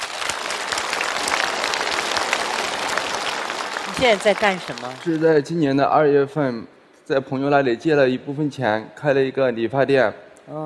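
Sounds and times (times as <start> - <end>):
studio audience clapping: 0.0 - 5.6
speech: 4.0 - 10.6.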